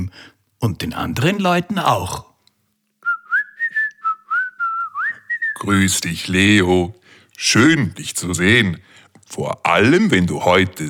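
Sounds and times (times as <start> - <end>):
speech: 0.1 - 2.3, 5.6 - 10.8
person whistling a cheerful tune: 3.0 - 5.7.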